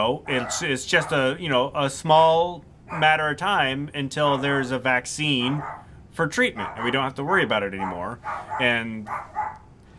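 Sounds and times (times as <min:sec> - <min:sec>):
speech: 0:00.0 - 0:09.4
dog barking: 0:00.2 - 0:01.3, 0:02.9 - 0:03.2, 0:04.3 - 0:04.7, 0:05.4 - 0:05.9, 0:06.5 - 0:09.7.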